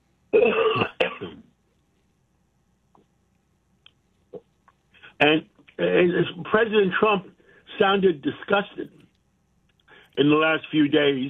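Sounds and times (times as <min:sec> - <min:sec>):
person clearing throat: 0:00.4 - 0:01.4
person coughing: 0:00.4 - 0:01.4
faint clicks: 0:02.9 - 0:04.8, 0:08.9 - 0:10.2
speech: 0:05.2 - 0:09.0, 0:10.2 - 0:11.2.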